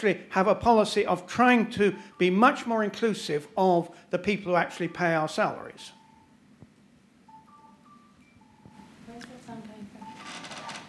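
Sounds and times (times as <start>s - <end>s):
speech: 0.0s - 6.0s
mobile phone ringing with a beeping melodic ringtone: 5.7s - 6.4s, 7.2s - 9.0s, 9.9s - 10.8s.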